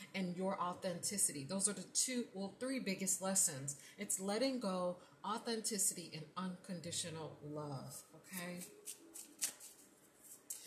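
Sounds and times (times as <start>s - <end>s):
speech: 0.1s - 9.0s
deck of cards being shuffled: 8.3s - 10.6s.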